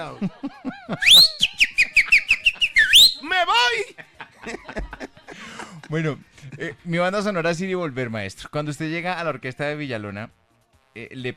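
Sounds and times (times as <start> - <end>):
speech: 0.0 - 1.4, 5.9 - 11.3
laughter: 0.0 - 3.0, 3.7 - 6.8
person whistling: 1.0 - 3.2.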